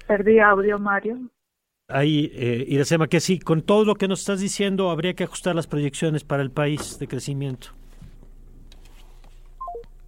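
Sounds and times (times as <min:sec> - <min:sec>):
faint steady hum: 0:00.0 - 0:10.0
speech: 0:00.1 - 0:07.8
telephone keypad dialing tones while re-establishing a call: 0:09.6 - 0:09.9.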